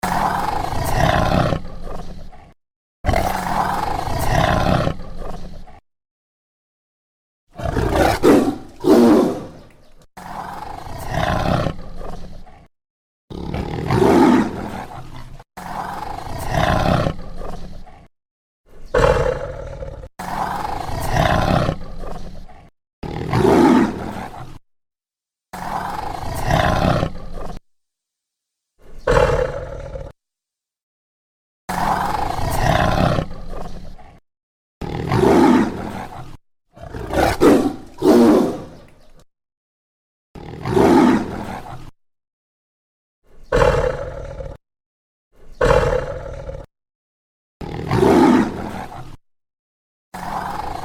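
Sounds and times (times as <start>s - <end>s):
tiger roaring: 0.0s - 5.8s, 7.6s - 12.7s, 13.3s - 18.1s, 18.8s - 24.6s, 25.6s - 27.6s, 28.8s - 30.2s, 31.7s - 34.2s, 34.8s - 38.9s, 40.4s - 41.9s, 43.5s - 44.6s, 45.6s - 46.7s, 47.6s - 49.0s, 50.2s - 50.8s.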